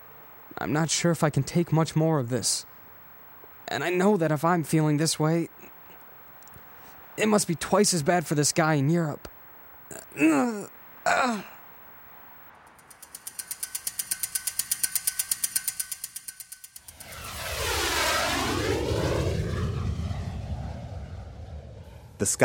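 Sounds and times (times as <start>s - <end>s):
speech: 0.5s - 2.7s, 3.7s - 5.7s, 7.2s - 9.3s, 10.2s - 11.5s, 22.2s - 22.4s
person grunting: 9.9s - 11.6s
rapid rattling buzz: 12.6s - 18.6s
private jet roaring overhead: 16.8s - 22.4s.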